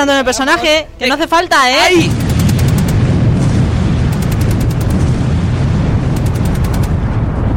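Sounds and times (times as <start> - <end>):
speech: 0.0 - 2.2
rapid bursts of gunfire sound effects: 2.0 - 7.1
heavy booming bazooka blasts sound effects: 2.0 - 7.5.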